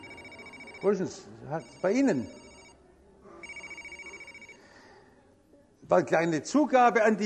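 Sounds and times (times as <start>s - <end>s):
mobile phone ringing with a trilling electronic tone: 0.0s - 2.8s, 3.4s - 4.8s
faint murmur: 0.0s - 7.2s
speech: 0.8s - 2.4s, 5.9s - 7.2s.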